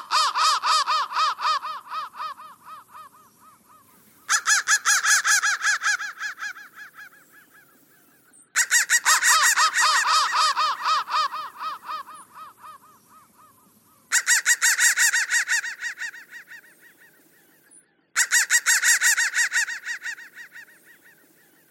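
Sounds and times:
crow cawing in raspy bursts: 0:00.0 - 0:07.7, 0:08.6 - 0:17.1, 0:18.2 - 0:21.3.

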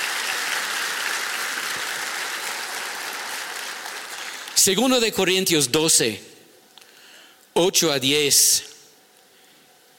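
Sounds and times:
large crowd applauding: 0:00.0 - 0:04.8
speech: 0:04.6 - 0:06.3, 0:07.6 - 0:08.7.

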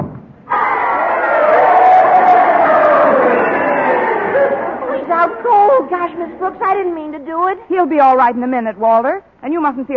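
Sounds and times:
scattered individual shouts and whoops: 0:00.5 - 0:05.0
large crowd cheering: 0:00.5 - 0:06.8
speech: 0:05.8 - 0:09.9.

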